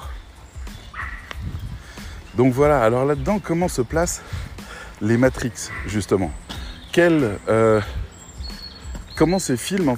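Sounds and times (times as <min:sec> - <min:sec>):
dogs barking and yipping: 0:00.8 - 0:01.4, 0:05.5 - 0:06.8
speech: 0:02.4 - 0:08.0, 0:09.2 - 0:09.9.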